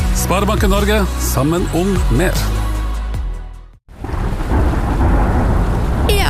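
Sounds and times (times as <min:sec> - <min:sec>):
speech: 0:00.2 - 0:02.6
deep roll of thunder: 0:03.9 - 0:06.2
heavy rain pouring down: 0:03.9 - 0:06.2.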